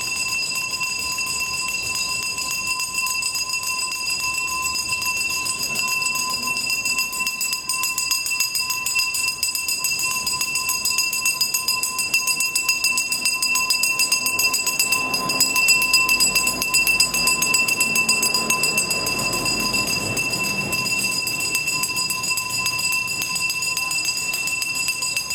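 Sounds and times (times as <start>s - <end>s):
garbage collector's loud hand bell ringing: 0.0s - 25.3s
faint rumble of passing traffic: 13.6s - 25.3s.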